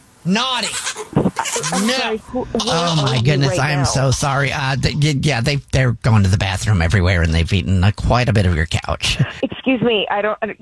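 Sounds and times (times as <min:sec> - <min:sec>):
speech: 0:00.2 - 0:10.6
goat bleating: 0:00.6 - 0:04.1
laughter: 0:00.9 - 0:05.0, 0:08.9 - 0:10.1.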